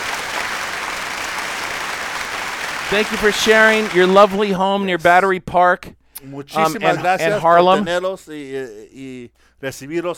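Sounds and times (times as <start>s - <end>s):
applause from a group of people: 0.0s - 4.5s
speech: 2.9s - 10.1s.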